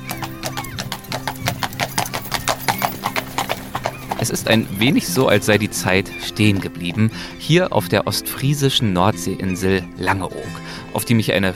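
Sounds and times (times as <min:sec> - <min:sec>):
hooves of a horse-drawn carriage clip-clopping: 0:00.0 - 0:08.2
speech: 0:04.3 - 0:11.5.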